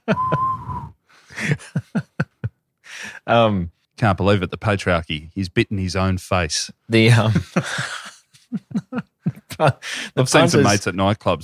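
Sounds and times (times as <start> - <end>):
speech: 0.1 - 0.6, 3.3 - 8.0, 9.6 - 11.4
voice imitating a man whistling through a hole in his cheek: 0.1 - 1.0
laughter: 1.3 - 2.6, 7.1 - 10.8.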